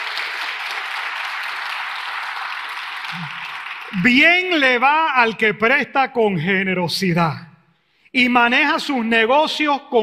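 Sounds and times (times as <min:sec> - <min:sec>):
audience applauding: 0:00.0 - 0:05.0
speech: 0:03.1 - 0:07.5, 0:08.1 - 0:10.0.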